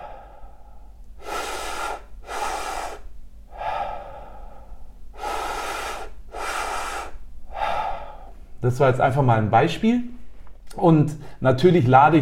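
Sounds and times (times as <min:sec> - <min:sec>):
slow deep breathing lying down as a breathwork exercise: 0:00.0 - 0:08.6
speech: 0:08.6 - 0:10.2, 0:10.8 - 0:12.1.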